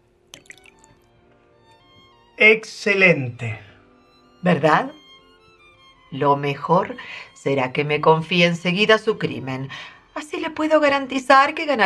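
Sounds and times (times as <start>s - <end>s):
port wine poured into two small glasses: 0.3s - 1.1s
speech: 2.4s - 3.7s, 4.4s - 5.0s, 6.1s - 11.8s.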